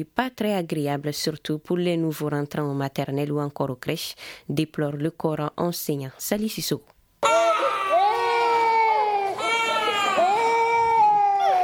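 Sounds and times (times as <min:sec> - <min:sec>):
speech: 0:00.0 - 0:07.4
young children crying and sobbing at a nursery school: 0:07.2 - 0:11.6.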